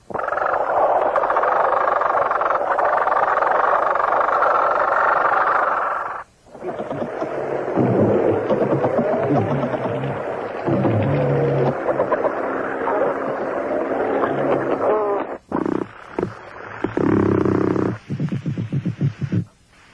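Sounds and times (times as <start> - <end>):
fish low grunts underwater: 0.2 - 19.4
fish rasping and grinding underwater: 6.6 - 13.7.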